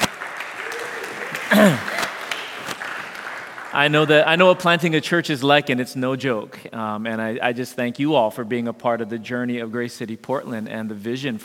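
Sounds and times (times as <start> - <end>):
audience clapping: 0.0 - 4.7
speech: 1.5 - 1.9, 3.8 - 11.4.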